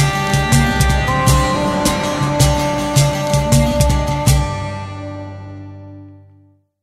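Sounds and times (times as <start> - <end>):
Arabic logo jingle: 0.2 - 4.8.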